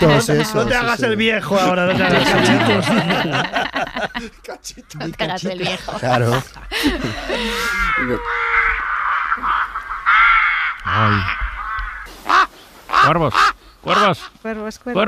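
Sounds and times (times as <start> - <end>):
laughter: 0.0 - 8.3
speech: 0.0 - 8.6, 10.9 - 11.4, 12.2 - 15.0
crows cawing: 7.0 - 14.4.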